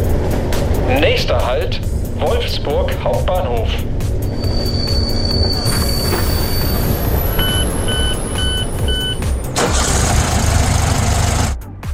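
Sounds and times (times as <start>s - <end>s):
train rolling along the rails with a steady low rumble: 0.0s - 11.6s
speech: 0.9s - 4.6s
train wheels squealing in high thin tones: 4.2s - 10.0s
repeated electronic beeps: 4.3s - 9.4s.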